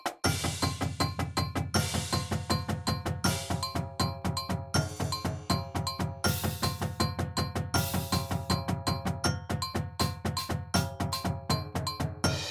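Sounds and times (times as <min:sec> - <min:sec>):
drumline playing at 160 bpm: 0:00.1 - 0:12.4.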